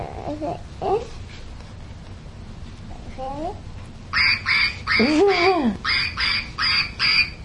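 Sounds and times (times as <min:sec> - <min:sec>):
duck quacking: 0:04.2 - 0:07.4.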